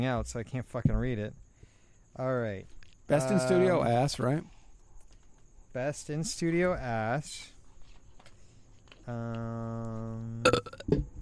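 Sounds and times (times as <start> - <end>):
speech: 0.0 - 1.5, 2.2 - 4.6, 5.8 - 7.5, 9.1 - 11.1
woman burping: 10.4 - 11.0.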